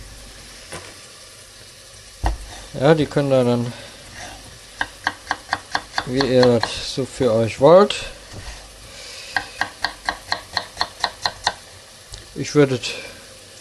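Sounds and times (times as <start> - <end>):
knife dicing peeled potatoes into cubes on a cutting board: 2.3 - 2.5, 4.8 - 6.9, 9.3 - 11.6
speech: 2.7 - 3.9, 6.1 - 8.2, 12.4 - 13.1.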